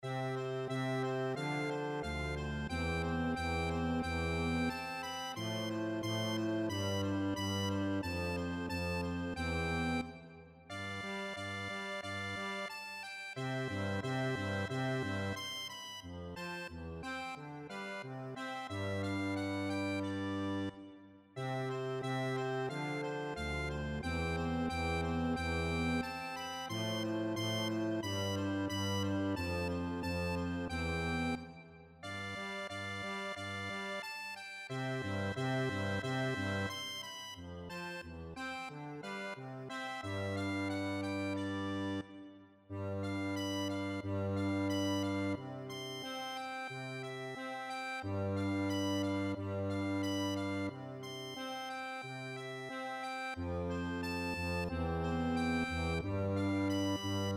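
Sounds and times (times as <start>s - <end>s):
andantino accordion piece: 0.0s - 57.3s.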